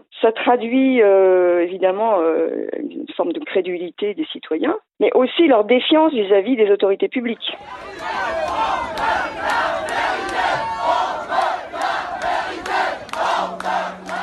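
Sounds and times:
speech: 0:00.1 - 0:09.8
crowd of protesters chanting a slogan in unison: 0:07.6 - 0:14.2.

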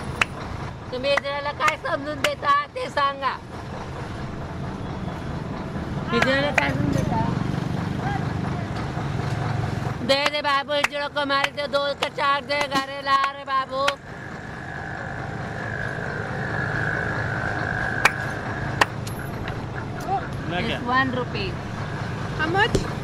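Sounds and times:
trucks and traffic on a busy highway: 0:00.0 - 0:23.0
voices calling out: 0:00.0 - 0:23.0
sustained droning tone: 0:13.1 - 0:20.3.

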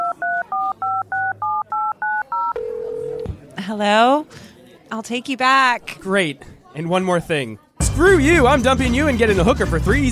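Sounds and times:
touch-tone telephone dialing beeps: 0:00.0 - 0:03.3
speech: 0:03.7 - 0:10.1.

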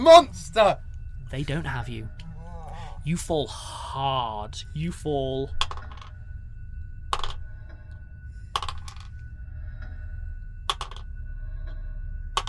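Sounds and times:
speech: 0:00.0 - 0:02.2, 0:03.0 - 0:05.8
low rumble: 0:00.0 - 0:12.4
many dice clattering onto a hard table: 0:05.6 - 0:06.1, 0:07.1 - 0:07.4, 0:08.6 - 0:09.1, 0:10.7 - 0:11.1.

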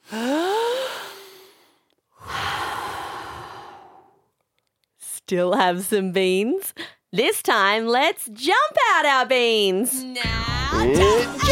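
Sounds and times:
group breathing deeply to catch their breath: 0:00.0 - 0:04.3
speech: 0:05.3 - 0:11.5.

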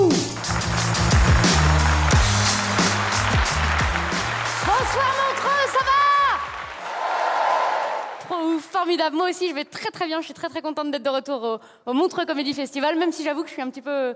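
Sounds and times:
music playing: 0:00.0 - 0:06.8
loud sustained applause from a large audience: 0:00.3 - 0:08.5
speech: 0:08.6 - 0:14.1.

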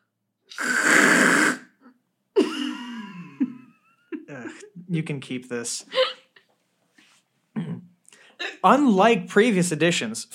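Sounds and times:
person blowing nose into a tissue: 0:00.5 - 0:01.8
speech: 0:04.5 - 0:06.1, 0:08.6 - 0:10.3.

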